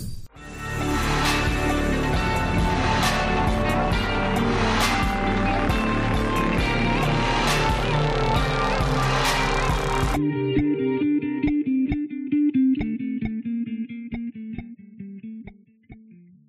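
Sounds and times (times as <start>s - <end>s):
soft sustained melodic tail: 0.4s - 12.4s
upbeat instrumental opening theme with bright layered synth tones: 0.4s - 13.4s.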